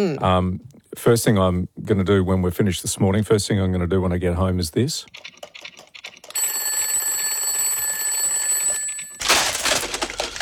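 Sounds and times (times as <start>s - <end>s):
speech: 0.0s - 5.4s
shrill electronic alarm ringing: 6.3s - 9.3s
harsh clattering noise: 9.2s - 10.4s.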